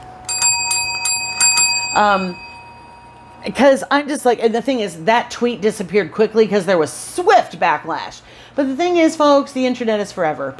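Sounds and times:
small bell ringing: 0:00.3 - 0:03.8
speech: 0:02.0 - 0:02.4, 0:03.4 - 0:10.5.

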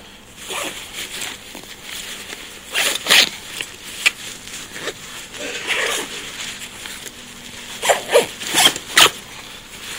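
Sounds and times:
faint rustling: 0:00.0 - 0:09.9
backpack zipper pulled closed after packing gear: 0:00.4 - 0:00.8, 0:02.7 - 0:03.4, 0:04.7 - 0:06.2, 0:07.8 - 0:09.2.

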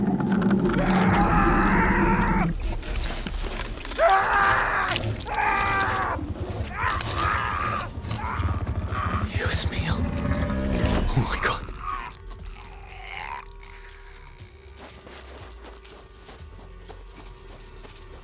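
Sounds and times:
tense movement: 0:00.6 - 0:18.2
keys jangling in a metallic rattle: 0:02.8 - 0:08.2, 0:14.6 - 0:18.2.

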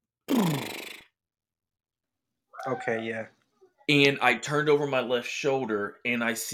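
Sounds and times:
person vocally imitating a horse's snort: 0:00.3 - 0:01.2
speech: 0:00.4 - 0:00.8, 0:02.6 - 0:06.5.

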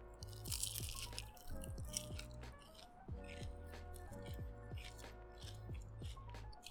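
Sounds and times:
crispy fried food being bitten and chewed: 0:00.0 - 0:06.6.

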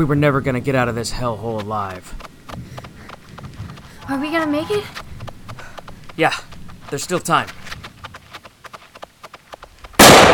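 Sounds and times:
speech: 0:00.0 - 0:02.7, 0:04.1 - 0:05.0, 0:06.2 - 0:07.6
faint rapid ticking: 0:00.0 - 0:10.0
gunshot in a train yard fired at a container: 0:10.0 - 0:10.3.

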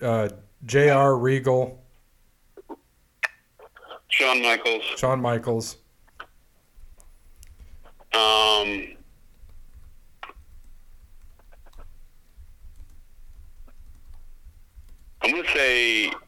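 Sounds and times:
speech: 0:00.0 - 0:01.8, 0:04.1 - 0:05.8, 0:08.2 - 0:09.0, 0:15.2 - 0:16.2
soft irregular typing on a keyboard: 0:09.3 - 0:15.2.

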